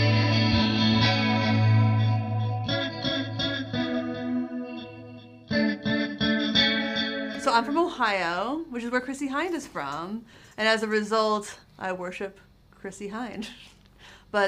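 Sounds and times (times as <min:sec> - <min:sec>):
electric guitar chords through spring reverb and digital delay: 0:00.0 - 0:08.0
speech: 0:07.5 - 0:13.7.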